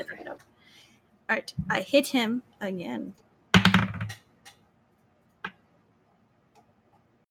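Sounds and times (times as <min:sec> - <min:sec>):
speech: 0:01.3 - 0:03.2
dice tumbling across a desk: 0:03.6 - 0:04.3.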